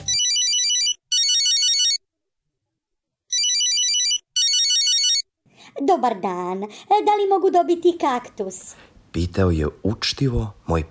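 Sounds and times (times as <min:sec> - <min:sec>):
telephone ringing in bright warbling electronic bursts: 0:00.0 - 0:02.0, 0:03.3 - 0:05.3
speech: 0:05.8 - 0:10.8.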